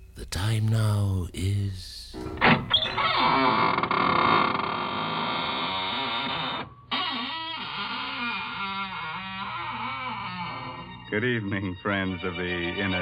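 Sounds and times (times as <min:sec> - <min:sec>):
speech: 0:00.3 - 0:04.1, 0:11.1 - 0:12.9
squeaking door creaking open: 0:02.1 - 0:11.2.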